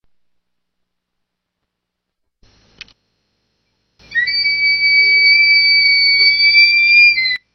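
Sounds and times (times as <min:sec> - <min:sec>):
black hawk calling: 0:04.0 - 0:07.4.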